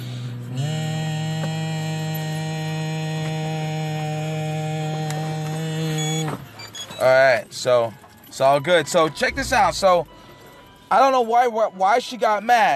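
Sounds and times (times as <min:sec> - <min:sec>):
blowing and humming into an ignition interlock breathalyzer fitted to a BMW car: 0:00.0 - 0:06.5
speech: 0:07.0 - 0:10.1, 0:10.9 - 0:12.7.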